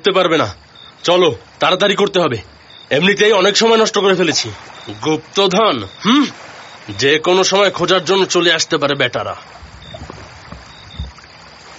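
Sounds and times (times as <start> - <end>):
speech: 0.0 - 10.1
water lapping and sloshing around a rowboat: 0.0 - 11.7
dull splashy bumps of two fishermen climbing out of a rowboat: 9.4 - 11.7.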